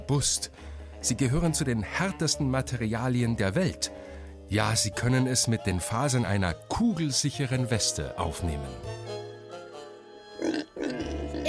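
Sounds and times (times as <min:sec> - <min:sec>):
speech: 0:00.1 - 0:09.2
pig grunting and oinking: 0:10.4 - 0:11.4.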